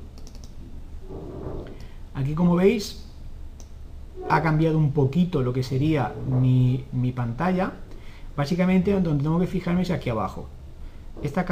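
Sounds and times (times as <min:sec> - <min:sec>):
low hum: 0:00.0 - 0:11.5
computer mouse double-click: 0:00.1 - 0:00.6
speech: 0:02.2 - 0:03.1, 0:04.3 - 0:07.8, 0:08.4 - 0:10.6, 0:11.2 - 0:11.5.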